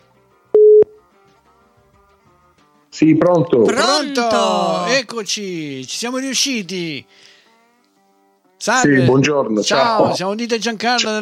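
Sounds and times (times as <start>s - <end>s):
mid-pitched outgoing call ringing tone beep: 0.6s - 1.0s
speech: 3.0s - 7.3s, 8.6s - 11.2s.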